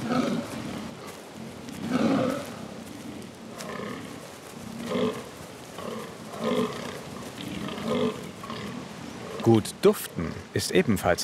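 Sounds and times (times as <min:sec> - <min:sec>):
fallow deer stags hoarse grunting rutting calls at a rutting ground: 0:00.0 - 0:10.9
speech: 0:09.5 - 0:11.2.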